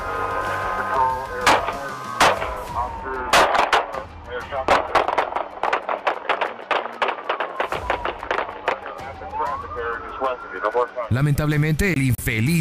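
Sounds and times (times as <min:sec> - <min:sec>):
police sirens wailing: 0:00.0 - 0:11.9
gunshots in a shootout between police and a suspect: 0:01.4 - 0:09.0
speech: 0:11.1 - 0:12.5.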